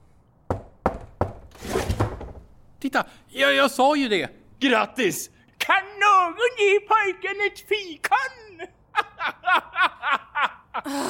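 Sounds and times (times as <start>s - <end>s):
knocking on a wooden hatch: 0.5s - 1.4s
speech: 2.8s - 11.0s
laughter: 8.9s - 11.0s.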